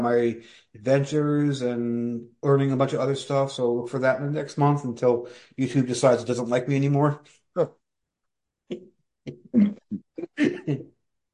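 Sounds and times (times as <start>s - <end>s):
speech: 0.0s - 7.8s, 8.7s - 10.9s
harsh coughing from a somewhat asthmatic person fighting off an infection: 9.6s - 10.8s.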